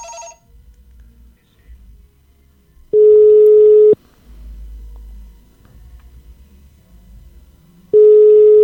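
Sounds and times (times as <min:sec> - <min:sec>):
outgoing phone call ringback tones: 0:00.0 - 0:00.4, 0:03.0 - 0:04.0, 0:08.0 - 0:08.6
faint low hum: 0:00.0 - 0:08.6.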